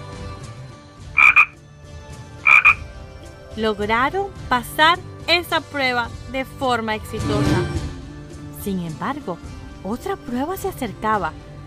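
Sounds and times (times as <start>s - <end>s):
frogs croaking: 1.2s - 1.6s, 2.4s - 2.8s
speech: 3.6s - 7.8s, 8.6s - 11.4s.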